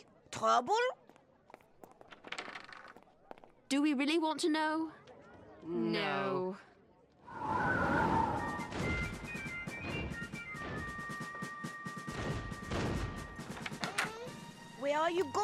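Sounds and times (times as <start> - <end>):
speech: 0.4 - 1.0, 3.7 - 5.0, 5.6 - 6.7, 14.8 - 15.4
faint high whistling tone: 7.2 - 11.5
distant cannon fire: 8.6 - 13.6.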